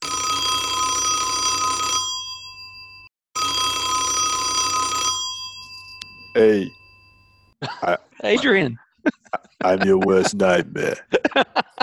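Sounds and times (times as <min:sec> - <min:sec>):
telephone bell ringing for an incoming call: 0:00.0 - 0:07.6
speech: 0:06.4 - 0:06.8, 0:07.6 - 0:11.8
laughter: 0:07.6 - 0:11.8.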